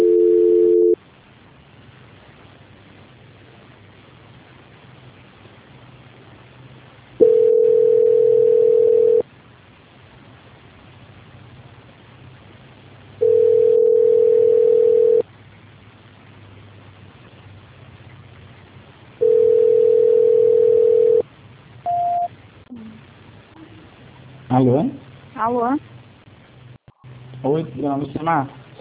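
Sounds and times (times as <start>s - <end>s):
steady low-pitched telephone line tone during a failed call transfer: 0.0s - 1.0s, 7.2s - 9.2s, 13.2s - 15.2s, 19.2s - 21.2s
faint telephone line hiss: 0.0s - 28.7s
speech: 24.6s - 25.8s, 27.8s - 28.7s.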